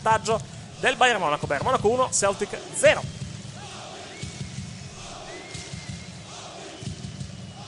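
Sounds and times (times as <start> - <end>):
speech: 0.0 - 3.2
stadium crowd of football fans chanting team name: 2.1 - 7.6.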